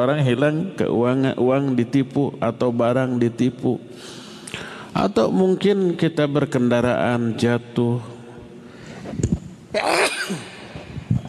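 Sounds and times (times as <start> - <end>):
speech: 0.0 - 8.1, 9.1 - 10.5
quick inhale: 3.9 - 4.9
quiet breathing: 3.9 - 5.0, 8.6 - 9.2
person sneezing: 9.7 - 10.8.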